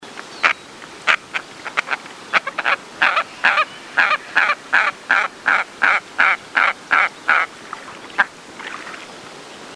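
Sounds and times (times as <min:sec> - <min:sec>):
Andean coot calling: 0:00.4 - 0:07.5.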